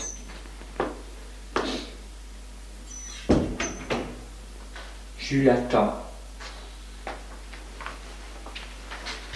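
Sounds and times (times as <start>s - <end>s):
faint high squeaks of a door moving: 2.9s - 4.1s
sharp knocks on a small wooden door: 3.3s - 4.0s
speech: 5.3s - 6.0s.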